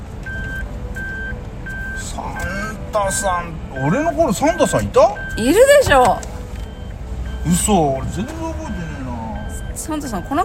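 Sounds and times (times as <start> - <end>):
low engine rumble of a vehicle being parked: 0.0 - 10.4
electronic reversing beeps of a vehicle being parked: 0.3 - 2.5, 3.7 - 5.4, 6.6 - 10.4
speech: 2.2 - 6.3, 7.4 - 9.0, 9.8 - 10.4.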